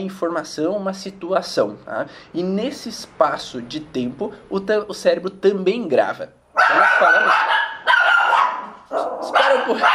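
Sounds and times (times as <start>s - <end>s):
speech: 0.0s - 7.6s, 8.9s - 9.9s
dogs barking and yapping: 6.6s - 9.9s.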